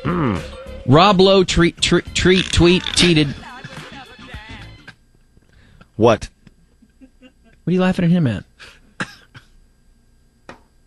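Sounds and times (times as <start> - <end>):
speech: 0.0 - 3.4, 6.0 - 6.4, 7.7 - 8.5
person coughing: 9.0 - 9.6.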